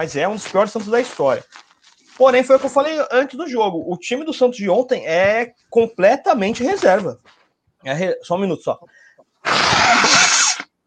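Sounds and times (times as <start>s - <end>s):
speech: 0.0s - 1.6s, 2.2s - 10.2s
loud sneeze into a camera: 9.4s - 10.7s.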